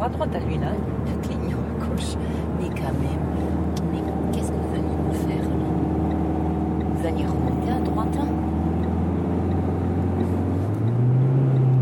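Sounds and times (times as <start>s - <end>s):
car engine revving during a gear change on an expressway: 0.0s - 11.8s
speech: 0.1s - 1.3s, 2.0s - 3.6s, 7.0s - 8.5s.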